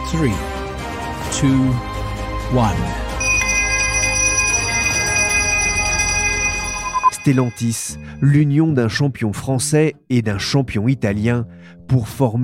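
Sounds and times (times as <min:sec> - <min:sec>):
speech: 0:00.1 - 0:00.6, 0:01.3 - 0:01.9, 0:02.5 - 0:03.0, 0:07.2 - 0:12.4
stock exchange opening bell ringing: 0:03.2 - 0:08.2.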